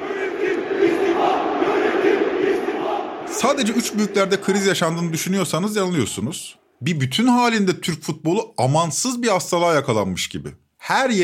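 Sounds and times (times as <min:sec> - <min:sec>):
large football stadium crowd chanting for resignation: 0:00.0 - 0:05.0
speech: 0:03.4 - 0:11.2.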